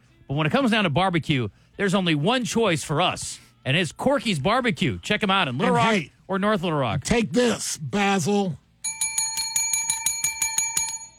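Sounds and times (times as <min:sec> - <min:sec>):
speech: 0:00.3 - 0:08.6
bicycle bell ringing: 0:08.8 - 0:11.1.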